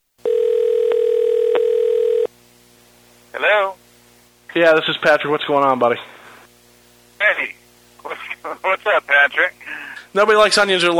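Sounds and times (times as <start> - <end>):
electronic ringback tone of a call to a cell phone: 0.2 - 2.3
phone line hiss: 0.2 - 2.3
speech: 4.6 - 6.2, 8.6 - 10.9.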